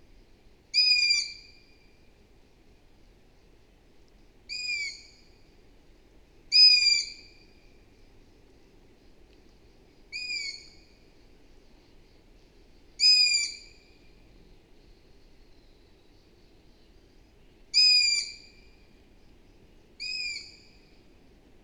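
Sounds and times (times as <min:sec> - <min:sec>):
Long-eared owl Asio otus squeaky calls: 0:00.7 - 0:01.5, 0:04.5 - 0:05.2, 0:06.5 - 0:07.3, 0:10.1 - 0:10.8, 0:13.0 - 0:13.9, 0:17.8 - 0:18.5, 0:20.0 - 0:20.7.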